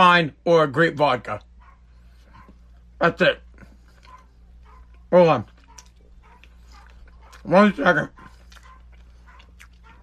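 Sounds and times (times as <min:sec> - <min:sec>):
speech: 0:00.0 - 0:01.5, 0:03.0 - 0:03.4, 0:05.1 - 0:05.5, 0:07.4 - 0:08.2
steady low hum: 0:00.0 - 0:10.0
dog barking upstairs: 0:01.4 - 0:02.9, 0:03.9 - 0:10.0.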